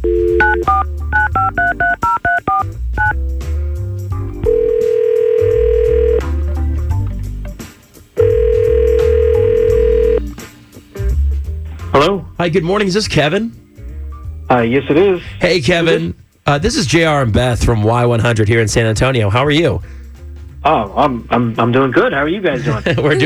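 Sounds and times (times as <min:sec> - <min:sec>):
touch-tone dialing beeps: 0:00.0 - 0:03.2, 0:04.4 - 0:06.3, 0:08.2 - 0:10.2
low music bed: 0:00.0 - 0:23.2
speech: 0:12.4 - 0:13.6, 0:14.5 - 0:20.0, 0:20.6 - 0:23.2
laughter: 0:22.5 - 0:23.2.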